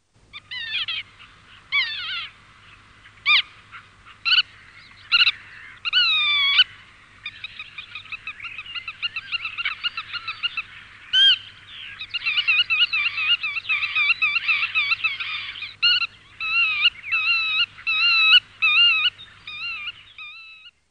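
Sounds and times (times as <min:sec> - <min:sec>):
black-tailed godwit calling: 0:00.3 - 0:20.8.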